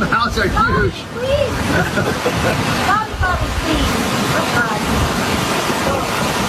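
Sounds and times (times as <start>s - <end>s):
speech: 0.0s - 5.5s
ocean surf breaking on a shoreline: 0.0s - 6.4s
laughter: 1.5s - 3.2s.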